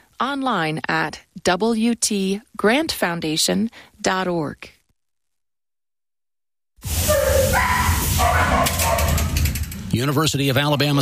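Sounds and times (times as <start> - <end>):
speech: 0.2 - 4.8, 6.8 - 8.8, 10.0 - 11.0
many dogs barking and yelping at an animal shelter: 6.9 - 9.5.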